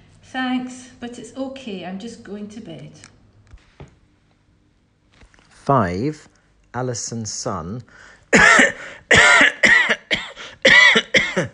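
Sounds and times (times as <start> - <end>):
speech: 0.3 - 3.2, 5.7 - 9.3
harsh hacking cough: 8.3 - 11.5.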